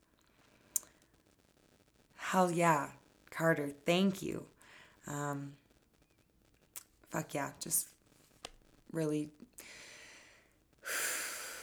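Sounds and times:
speech: 2.3s - 5.6s, 7.1s - 7.9s, 8.9s - 9.8s
deep inhale: 9.6s - 11.6s.

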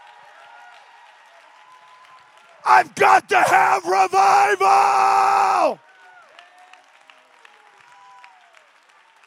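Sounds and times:
crowd clapping hands in praise of the Lord: 0.0s - 9.2s
speech: 2.6s - 5.8s.

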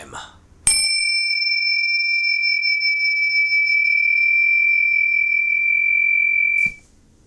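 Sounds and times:
boxing ring bell ringing: 0.7s - 6.8s.

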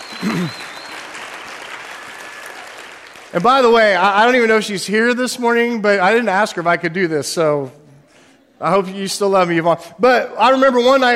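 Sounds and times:
audience applauding: 0.0s - 4.4s
speech: 0.2s - 0.7s, 3.3s - 7.8s, 8.6s - 11.1s.

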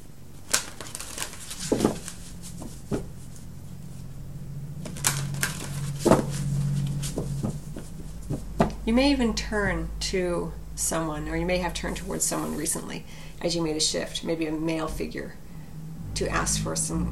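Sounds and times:
cards being drawn and handled: 0.4s - 3.5s, 4.8s - 8.8s
speech: 8.9s - 15.4s, 16.2s - 17.1s.

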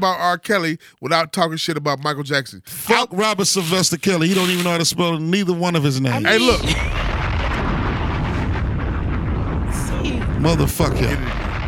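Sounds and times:
speech: 0.0s - 7.2s, 10.4s - 11.5s
bomb explosion sound effect roar and low rumble: 6.4s - 11.6s.

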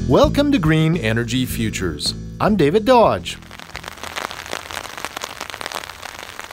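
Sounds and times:
speech: 0.1s - 3.5s
heavy spring rain: 3.4s - 6.5s.

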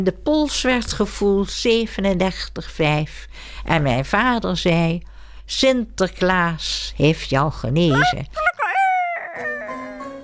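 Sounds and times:
speech: 0.0s - 8.4s
rooster crowing: 8.0s - 10.0s.

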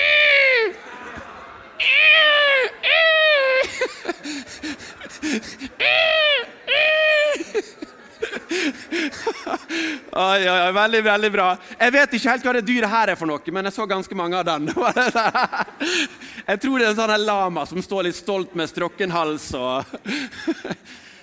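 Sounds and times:
group of people imitating drawn-out cat-like meows: 0.0s - 0.8s, 1.8s - 3.6s
laughter: 0.0s - 11.7s, 14.5s - 16.5s, 19.6s - 21.2s
speech: 10.1s - 21.1s.

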